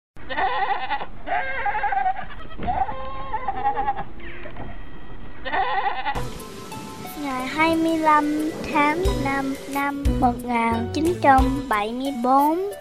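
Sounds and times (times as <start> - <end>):
herd of goats bleating in a pen beneath a hayloft: 0.2 - 4.0, 5.4 - 6.2
speech: 0.3 - 1.7, 7.2 - 12.7.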